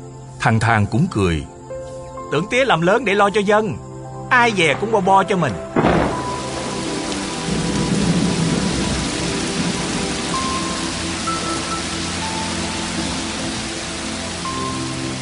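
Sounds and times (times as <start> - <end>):
speech: 0.4 - 1.5, 2.3 - 6.0
heavy rain pouring: 4.3 - 15.2
low rumble of thunder: 4.4 - 15.2.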